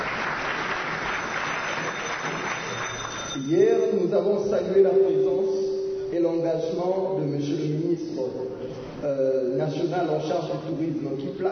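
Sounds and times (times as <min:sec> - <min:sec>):
audience applause at the closing day of an event: 0:00.0 - 0:03.4
speech: 0:03.4 - 0:11.5.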